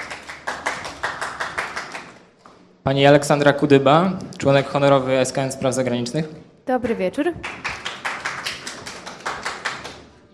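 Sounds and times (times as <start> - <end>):
audience applause at a panel event: 0.0 - 2.2, 7.4 - 10.0
speech: 2.9 - 7.6.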